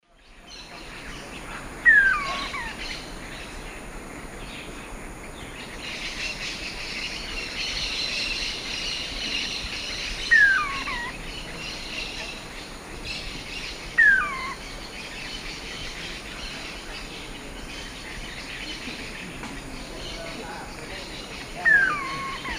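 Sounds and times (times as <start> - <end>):
juvenile Monasa nigrifrons calling in eastern lowlands of South America: 1.2 - 3.2, 6.1 - 17.3, 18.6 - 22.5.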